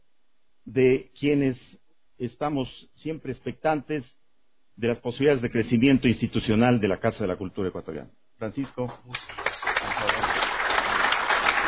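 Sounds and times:
speech: 0.7 - 4.2, 4.8 - 9.4
audience applause in a cultural centre hall: 9.1 - 11.6.

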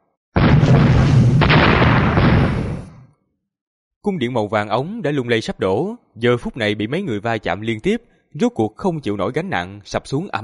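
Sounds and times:
huge explosion with shockwave: 0.4 - 3.1
speech: 4.0 - 10.4.

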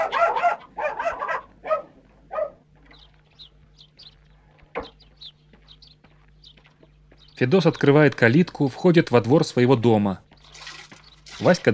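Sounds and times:
dog barking in a village yard: 0.0 - 2.7
low steady hum: 0.0 - 11.7
speech: 7.4 - 10.3, 11.4 - 11.7.

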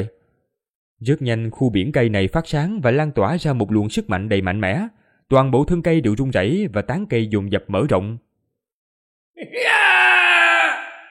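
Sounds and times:
speech: 1.0 - 8.3
creature screaming in fear: 9.4 - 11.1.

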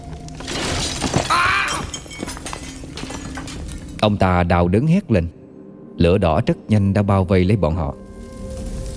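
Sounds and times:
tall stack of pots toppling in a strong gust at a pottery kiln: 0.4 - 3.8
speech: 4.0 - 5.4, 6.0 - 8.0.

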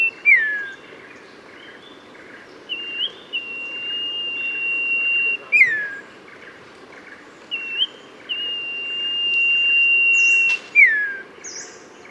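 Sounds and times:
Oriental magpie-robin singing sweet whistles and chirps: 0.0 - 0.8, 2.7 - 6.1, 7.5 - 11.7
constant background hiss: 0.0 - 12.0.

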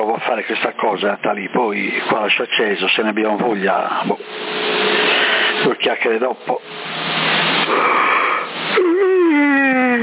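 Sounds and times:
speech: 0.2 - 5.0, 5.6 - 6.7
person yawning into a microphone over a CB radio link: 7.7 - 10.0.

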